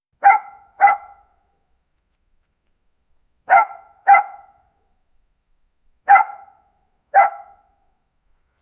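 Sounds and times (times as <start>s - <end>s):
distant single dog bark: 0.2s - 1.4s, 3.5s - 4.7s, 6.1s - 7.8s.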